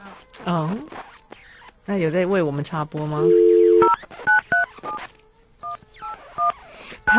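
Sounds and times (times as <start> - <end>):
speech: 0.2 - 1.0, 1.9 - 3.5
dual-pitched telephone keypad beeps dialing a phone number: 3.2 - 4.0.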